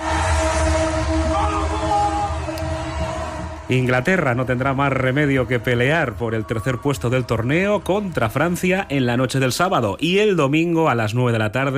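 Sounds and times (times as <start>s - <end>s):
train horns honking in celebration: 0.0s - 2.7s
crowd and street commotion: 0.0s - 10.3s
speech: 3.7s - 11.7s.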